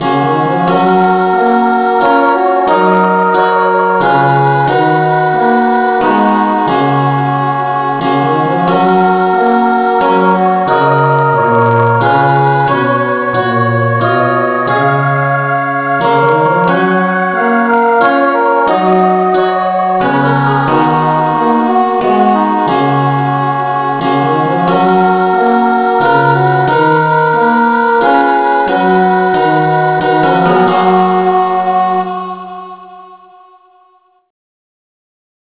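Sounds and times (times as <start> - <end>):
instrumental hymn in F sharp: 0.0 - 33.8.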